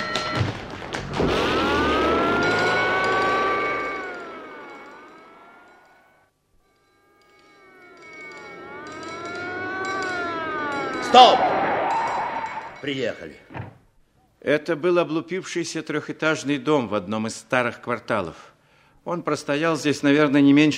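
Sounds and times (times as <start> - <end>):
fire alarm siren wailing: 0.0 - 13.3
speech: 11.2 - 11.5, 12.8 - 13.6, 14.4 - 20.7.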